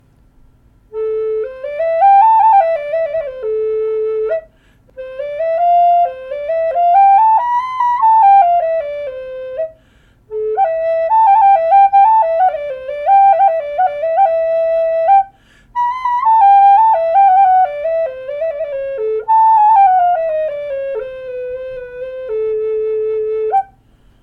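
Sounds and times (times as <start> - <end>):
Chechen native style flute playing: 0.9 - 23.9.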